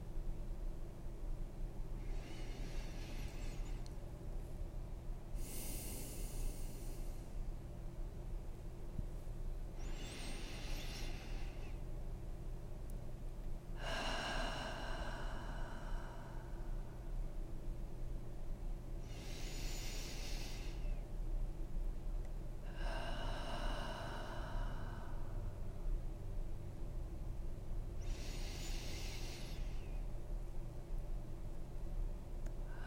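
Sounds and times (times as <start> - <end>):
low constant hum: 0.0 - 32.8
slow deep breaths in through the nose and out through the mouth: 1.8 - 4.3, 5.2 - 7.6, 9.6 - 12.0, 13.7 - 17.4, 18.9 - 21.1, 22.6 - 26.0, 28.0 - 30.2, 32.6 - 32.8.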